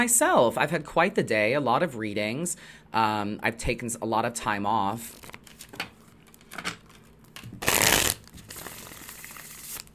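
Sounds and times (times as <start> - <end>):
speech: 0.0 - 5.4
tarot cards being shuffled: 5.1 - 9.9.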